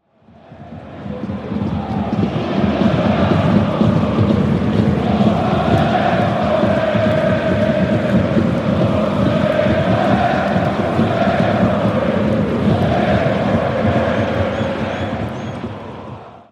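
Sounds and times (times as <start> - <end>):
stadium ambience: 0.0 - 16.5.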